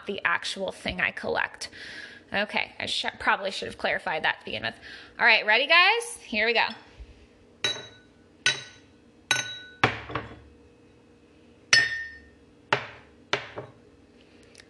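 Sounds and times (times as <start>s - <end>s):
speech: 0.0s - 6.9s
beer glasses clinking together: 7.6s - 10.4s, 11.8s - 12.3s.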